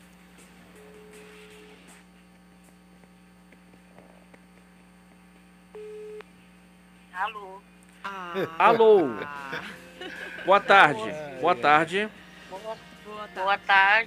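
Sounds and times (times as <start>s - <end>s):
loud electrical hum: 0.0s - 14.0s
telephone line tone while placing a call: 5.8s - 6.2s
speech: 7.2s - 9.8s, 10.4s - 12.2s, 13.4s - 14.0s
laughter: 8.1s - 11.9s.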